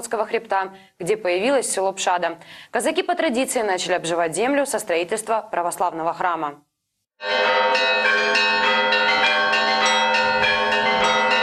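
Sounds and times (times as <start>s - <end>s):
speech: 0.1s - 8.5s
church bells pealing: 7.2s - 11.4s.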